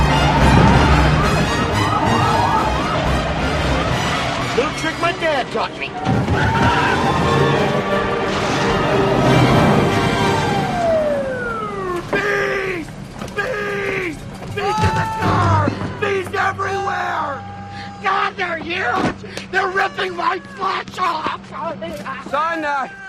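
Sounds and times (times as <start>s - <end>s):
people screaming and yelling as they run out of a stopped car: 0.0s - 23.0s
rumbling background: 0.0s - 23.0s.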